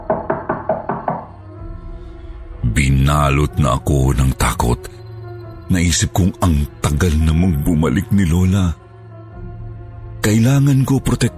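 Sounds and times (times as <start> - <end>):
knocking on a wooden door: 0.0 - 1.4
speech: 2.8 - 5.0, 5.7 - 8.8, 10.2 - 11.3.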